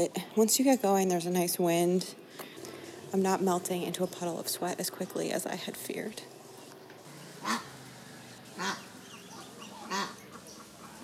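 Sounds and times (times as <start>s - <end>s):
speech: 0.0s - 2.5s, 3.1s - 6.3s
softer duck flock chatter at a duck farm: 0.0s - 11.0s
ducks quacking at a duck farm along a canal in rural Vietnam: 7.2s - 11.0s.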